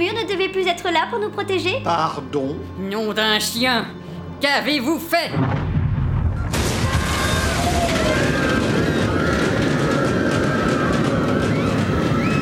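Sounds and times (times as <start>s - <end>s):
speech: 0.7s - 5.7s
crackling debris from an atomic blast: 5.4s - 12.3s
massive atomic blast blowing apart a defensive shield wall in a desert battle: 5.4s - 12.3s.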